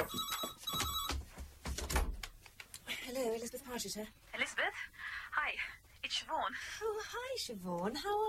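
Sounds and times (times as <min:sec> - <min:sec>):
telephone bell ringing with rapid metallic trilling: 0:00.0 - 0:01.2
low noise: 0:00.0 - 0:08.2
speech: 0:03.3 - 0:08.2.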